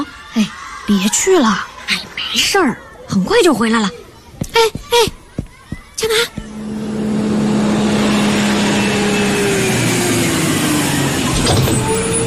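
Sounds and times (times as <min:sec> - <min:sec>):
speech: 0:00.4 - 0:04.0, 0:04.6 - 0:05.2, 0:06.0 - 0:06.4
bus engine droning as it slows to a halt: 0:04.5 - 0:12.2.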